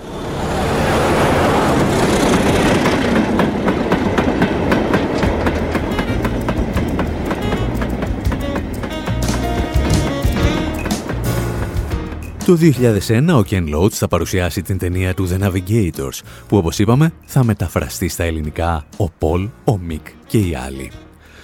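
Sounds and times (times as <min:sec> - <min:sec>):
train rolling along rails with rumbling roar: 0:00.0 - 0:13.7
train wheels clickety-clack on rails: 0:01.7 - 0:12.6
speech: 0:12.5 - 0:21.1.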